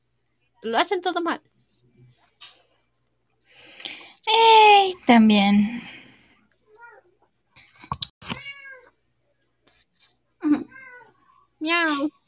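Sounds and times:
speech: 0.6s - 1.5s, 4.3s - 5.9s, 11.6s - 12.2s
female cat meowing: 8.3s - 8.9s.

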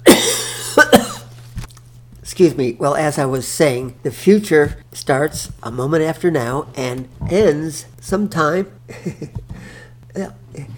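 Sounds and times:
person coughing: 0.0s - 1.3s
speech: 2.4s - 10.7s.

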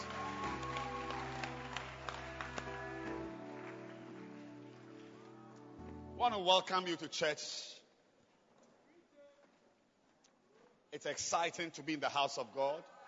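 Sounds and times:
church audience clapping: 0.0s - 5.8s
sustained keyboard or organ chord droning: 0.0s - 6.5s
speech: 6.2s - 7.8s, 11.0s - 12.9s.

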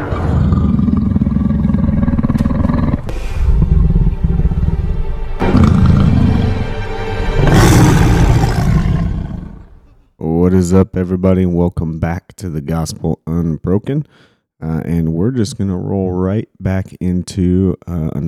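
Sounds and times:
lion roaring: 0.0s - 10.0s
speech: 10.7s - 18.2s.

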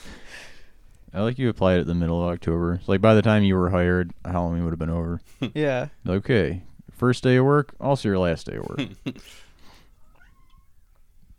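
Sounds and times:
speech: 1.1s - 9.4s
cat meowing: 10.0s - 11.0s.

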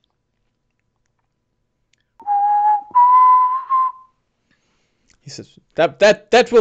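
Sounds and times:
person whistling a short two-part signal call: 2.2s - 4.1s
speech: 5.3s - 6.5s.

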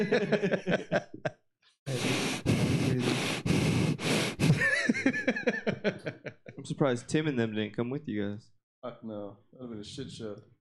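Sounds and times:
speech: 0.0s - 1.3s, 6.8s - 10.5s
laughter: 0.0s - 1.4s, 4.4s - 6.9s
heavy rushing breaths into a microphone: 1.9s - 4.8s.

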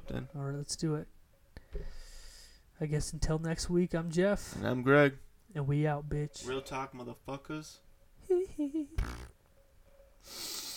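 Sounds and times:
speech: 0.1s - 2.0s, 2.8s - 7.8s, 8.4s - 9.4s, 10.2s - 10.6s
fart with squeaky tonal bursts and rough blast: 9.0s - 9.4s.

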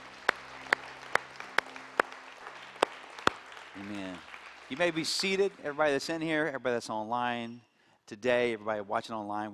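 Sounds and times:
group clapping hands in steady unison rhythm: 0.0s - 6.3s
speech: 3.8s - 9.5s.

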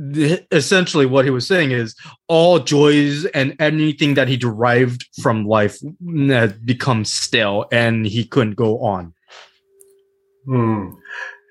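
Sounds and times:
speech: 0.1s - 9.5s, 10.4s - 11.4s
breathy hissing outward breath: 9.3s - 9.6s, 11.0s - 11.5s
heavy voiced exhalation: 10.5s - 11.5s.

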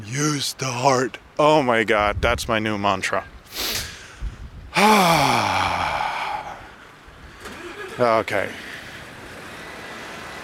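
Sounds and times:
speech: 0.1s - 3.8s, 4.8s - 5.8s, 8.0s - 8.6s
big truck passing by: 7.4s - 10.4s.

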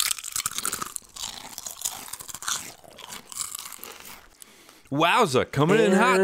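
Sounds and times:
something brittle being bitten and chewed: 0.0s - 4.9s
speech: 4.9s - 6.2s.

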